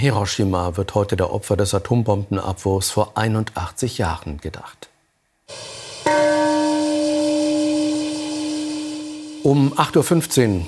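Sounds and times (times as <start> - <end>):
speech: 0.0 - 4.9, 9.4 - 10.6
peace bell struck at a memorial ceremony in Hiroshima: 6.0 - 10.6.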